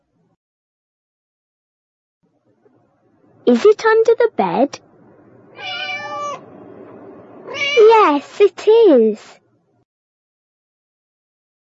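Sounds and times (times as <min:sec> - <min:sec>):
speech: 0:03.4 - 0:04.8, 0:07.5 - 0:09.4
cat meowing: 0:05.5 - 0:06.4, 0:07.5 - 0:07.9.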